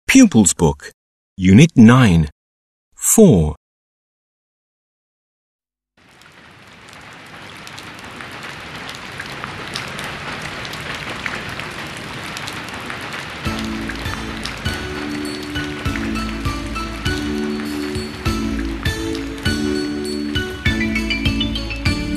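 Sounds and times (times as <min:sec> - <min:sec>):
speech: 0:00.1 - 0:02.4, 0:03.1 - 0:03.6
steady rain falling: 0:06.0 - 0:22.1
rhythmic music track: 0:14.1 - 0:22.1.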